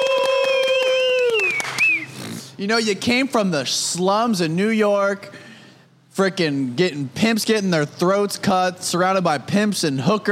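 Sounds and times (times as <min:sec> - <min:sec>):
round of applause: 0:00.0 - 0:02.2
speech: 0:02.6 - 0:05.4, 0:06.2 - 0:10.3.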